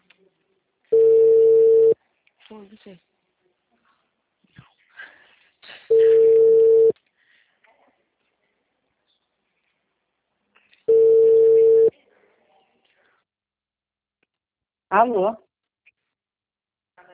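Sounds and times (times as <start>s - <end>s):
ringback tone of an outgoing telephone call: 0.9s - 2.0s, 5.9s - 7.0s, 10.9s - 11.9s
speech: 2.5s - 3.1s, 14.9s - 15.4s.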